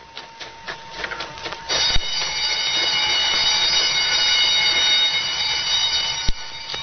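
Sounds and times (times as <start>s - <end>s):
prison escape alarm ringing: 1.7s - 6.8s.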